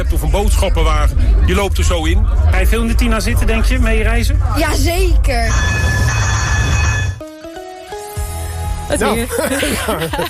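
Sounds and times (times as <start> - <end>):
tram rumbling past: 0.0 - 7.2
street noise: 0.0 - 10.2
speech: 0.1 - 6.2, 8.9 - 10.2
bright tram bell dings: 5.4 - 7.2
laughter: 9.1 - 10.2.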